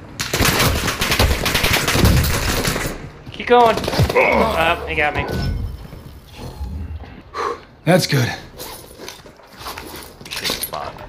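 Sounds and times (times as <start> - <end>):
rapid automatic gunfire in a video game: 0.2 - 4.2
speech: 3.4 - 5.5, 7.9 - 8.4.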